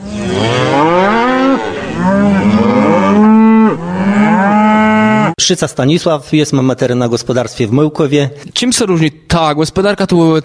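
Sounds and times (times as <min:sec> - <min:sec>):
dairy cows mooing in a reverberant barn on a farm in Poland: 0:00.0 - 0:05.4
speech: 0:00.3 - 0:00.7, 0:05.5 - 0:10.4.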